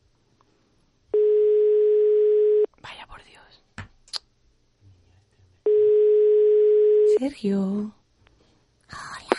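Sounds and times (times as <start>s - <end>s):
phone call ringback tone: 1.2s - 2.7s, 5.7s - 7.2s
hushed whispering: 2.8s - 3.6s, 8.9s - 9.3s
speech: 7.2s - 8.0s.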